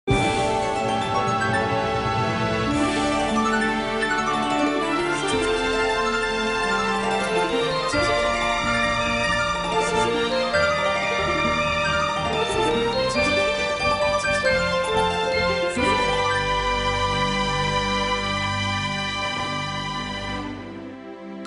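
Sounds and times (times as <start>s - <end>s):
lyre playing: 0.1s - 20.4s.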